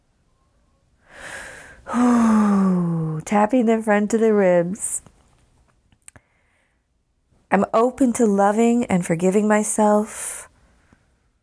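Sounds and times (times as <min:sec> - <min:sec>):
big deep breath during a chest-tapping relaxation exercise: 0:01.0 - 0:02.8
speech: 0:03.3 - 0:05.1, 0:07.5 - 0:10.4.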